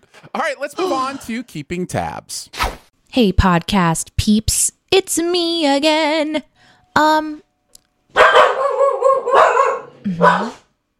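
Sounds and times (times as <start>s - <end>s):
speech: 0.4s - 7.4s, 9.3s - 10.6s
dogs barking: 8.1s - 10.7s.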